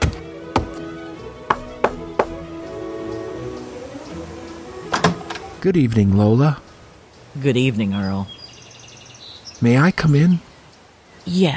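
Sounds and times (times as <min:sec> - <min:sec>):
soft steady musical hum: 0:00.0 - 0:08.0
man knocking on the door of a little house: 0:01.5 - 0:02.5
speech: 0:05.6 - 0:06.7, 0:07.4 - 0:08.4, 0:09.6 - 0:10.5, 0:11.2 - 0:11.5.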